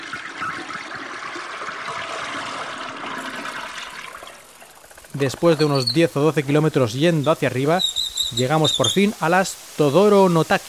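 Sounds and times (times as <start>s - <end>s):
toilet flushing: 0.0s - 4.5s
speech: 5.2s - 10.6s.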